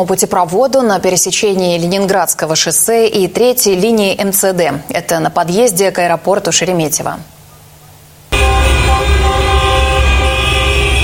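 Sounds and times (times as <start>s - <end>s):
speech: 0.0s - 7.4s
several vehicle horns honking: 8.3s - 11.0s.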